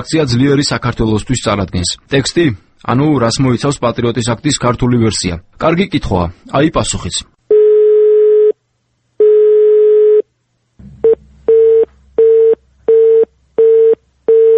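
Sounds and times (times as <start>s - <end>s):
speech: 0.0s - 7.4s
telephone line tones from a recorded call attempt: 7.5s - 8.6s, 9.2s - 10.2s, 11.1s - 14.5s.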